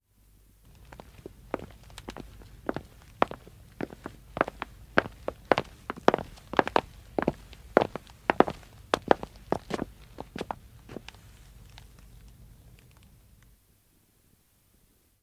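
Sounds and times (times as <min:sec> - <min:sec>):
male footsteps on wood: 0:00.8 - 0:11.2.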